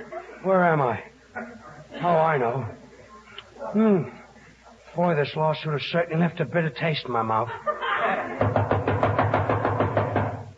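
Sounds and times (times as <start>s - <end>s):
speech: 0.2s - 2.8s, 3.6s - 4.2s, 5.0s - 8.6s
laughter: 7.2s - 8.7s
knocking on a door: 8.4s - 10.5s.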